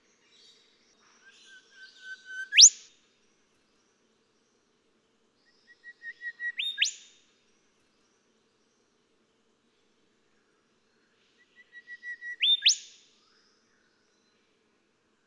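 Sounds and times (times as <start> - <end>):
golden whistler song of whistled notes ending in a whip-crack: 2.3 - 2.9, 6.6 - 7.0, 12.3 - 12.9.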